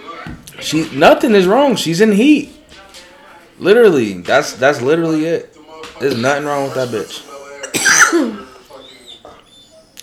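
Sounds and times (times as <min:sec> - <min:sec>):
speech: 0:00.6 - 0:02.6, 0:03.6 - 0:08.4
harsh cough with throaty rasp: 0:07.6 - 0:08.6.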